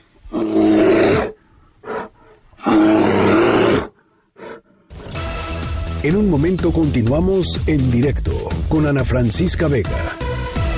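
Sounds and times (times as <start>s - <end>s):
bear grunting breaths: 0.0s - 2.8s, 3.6s - 5.0s
bear roaring: 0.3s - 4.7s
speech: 6.0s - 10.3s.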